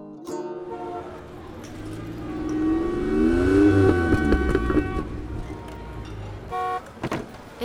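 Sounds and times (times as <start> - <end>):
taxi horn short honks: 0.6 - 1.6, 2.4 - 7.0
taxi engine rumble approaching: 0.7 - 7.6.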